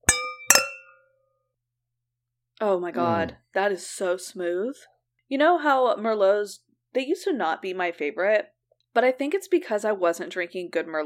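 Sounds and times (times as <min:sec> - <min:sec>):
wine glasses clinking in a toast: 0:00.0 - 0:01.0
speech: 0:02.6 - 0:11.0.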